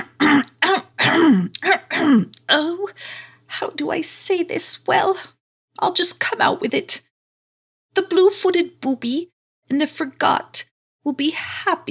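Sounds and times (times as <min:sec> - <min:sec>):
person clearing throat: 0:00.0 - 0:02.3
speech: 0:02.2 - 0:07.1, 0:07.9 - 0:11.8.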